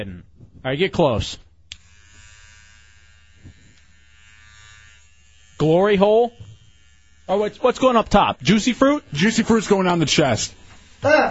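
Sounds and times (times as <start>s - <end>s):
speech: 0.0s - 1.4s, 5.6s - 6.4s, 7.3s - 11.3s
electric shaver buzzing while shaving a person: 1.7s - 11.3s.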